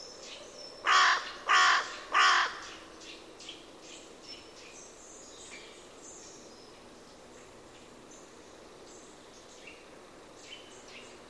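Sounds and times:
bird giving harsh hoarse caws: 0.8s - 2.8s.

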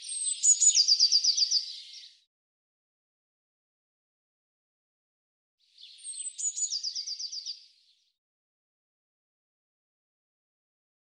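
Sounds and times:
Eurasian blue tit singing high thin notes and trill: 0.0s - 2.3s, 5.7s - 8.1s.

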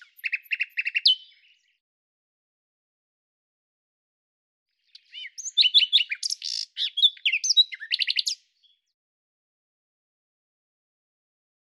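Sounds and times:
common nightingale song: 0.0s - 1.8s, 4.8s - 9.0s.

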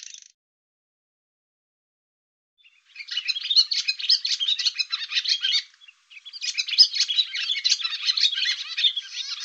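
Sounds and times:
Barn swallow chattering with quick rasping high twittered notes: 2.9s - 9.4s.

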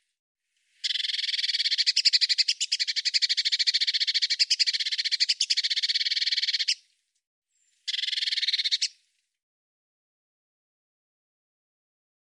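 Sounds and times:
Eurasian blue tit rattling churr: 0.8s - 6.8s, 7.9s - 9.0s.

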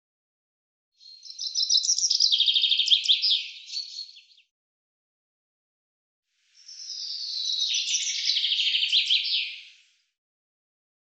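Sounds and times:
common chaffinch song: 1.0s - 4.5s, 6.5s - 10.0s.

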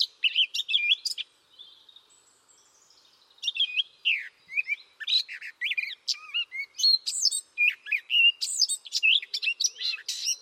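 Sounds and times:
bird calls of high whistled notes: 0.0s - 1.2s, 3.4s - 10.4s.

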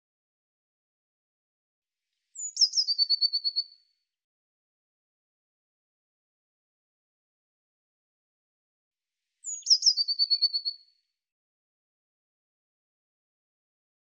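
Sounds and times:
Eurasian blue tit calling: 2.4s - 3.6s, 9.4s - 10.8s.

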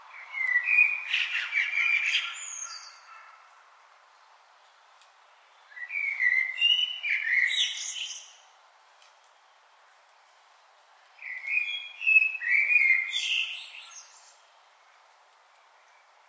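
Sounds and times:
common blackbird singing: 0.1s - 3.4s, 5.6s - 8.4s, 11.2s - 14.5s.

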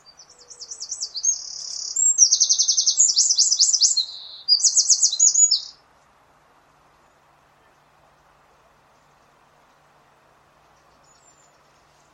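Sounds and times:
bird trilled chirps: 0.0s - 5.8s.

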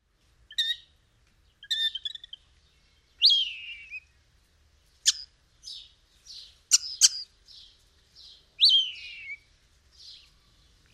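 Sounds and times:
bird chirping and whistling: 0.5s - 0.8s, 1.6s - 2.4s, 3.2s - 4.0s, 5.1s - 5.8s, 6.7s - 7.3s, 8.6s - 9.5s.

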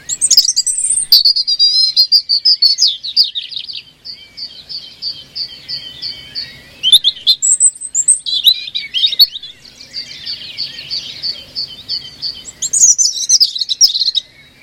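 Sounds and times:
European robin singing: 0.0s - 14.6s.

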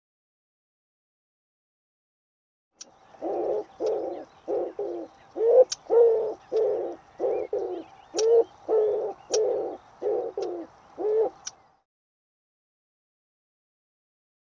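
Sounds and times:
bird cooing: 3.1s - 11.6s.

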